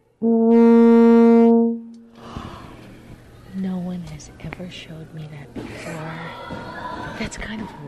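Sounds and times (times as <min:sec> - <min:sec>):
sustained low euphonium note: 0:00.0 - 0:02.1
speech: 0:04.7 - 0:05.6, 0:07.2 - 0:07.8.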